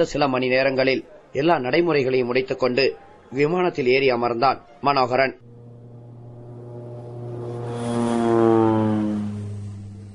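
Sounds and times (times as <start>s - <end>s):
speech: 0.0s - 5.5s
propeller airplane droning overhead: 2.4s - 3.5s, 5.4s - 10.1s.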